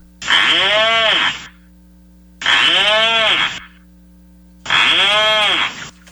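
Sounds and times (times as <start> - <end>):
rhinoceros auklet nasal bleating calls: 0.2 - 1.6, 2.4 - 3.8, 4.6 - 6.0.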